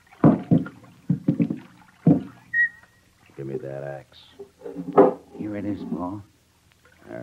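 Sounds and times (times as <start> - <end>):
oars dipping and pulling through river water: 0.0 - 3.5
speech: 3.4 - 6.3.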